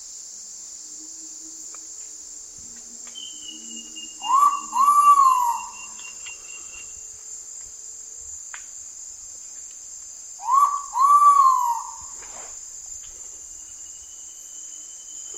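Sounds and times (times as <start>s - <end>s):
shrill insect chorus in Indonesia: 0.0s - 15.3s
ivory-breasted pitta whistled calls in Indonesia: 3.2s - 7.0s, 10.4s - 12.2s.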